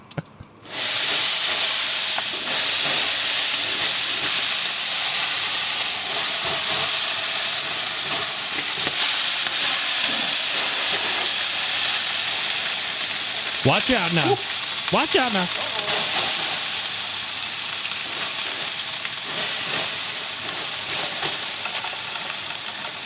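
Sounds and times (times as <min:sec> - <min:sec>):
steam hissing from an opened barbecue during a steam clean: 0:00.6 - 0:23.0
man calling out warnings: 0:13.6 - 0:16.0
speech: 0:13.7 - 0:15.9.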